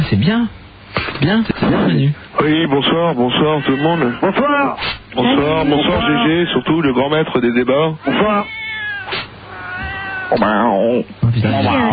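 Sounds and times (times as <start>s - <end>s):
speech: 0.1s - 9.2s, 10.3s - 11.9s
cat meowing: 3.3s - 6.5s, 8.0s - 10.7s.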